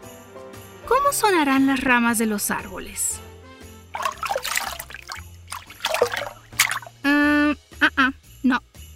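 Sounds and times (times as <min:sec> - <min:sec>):
speech: 0:01.1 - 0:03.3
water trickling and splashing: 0:03.9 - 0:07.1.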